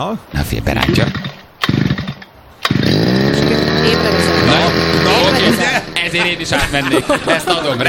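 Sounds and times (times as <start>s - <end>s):
speech: 0.0s - 1.3s, 6.1s - 7.8s
petrol brush cutter engine pull-started and idling: 0.8s - 7.7s
laughter: 3.9s - 7.8s.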